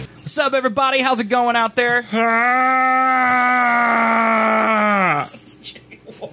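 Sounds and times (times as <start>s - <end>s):
speech: 0.4s - 5.4s
loud sustained human scream: 2.1s - 5.4s.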